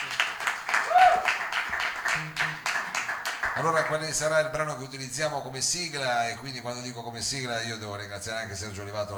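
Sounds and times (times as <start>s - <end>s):
audience applauding performing artists: 0.0s - 4.1s
whistle or cheer: 0.8s - 1.3s
speech: 3.6s - 9.1s.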